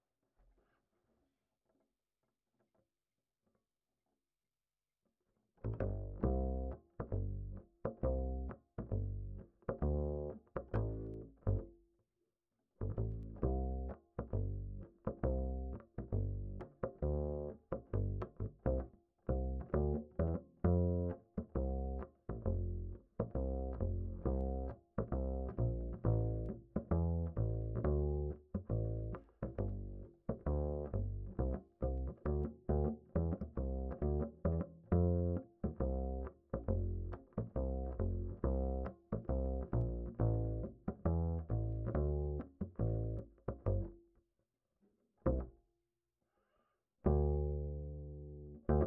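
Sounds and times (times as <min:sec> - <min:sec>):
bass line: 0:05.7 - 0:11.7, 0:12.8 - 0:44.0, 0:45.3 - 0:45.5, 0:47.1 - 0:48.8.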